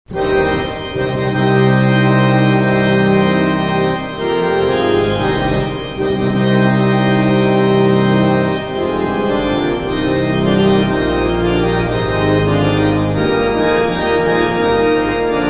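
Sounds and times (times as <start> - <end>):
organ: 0.1 - 15.4.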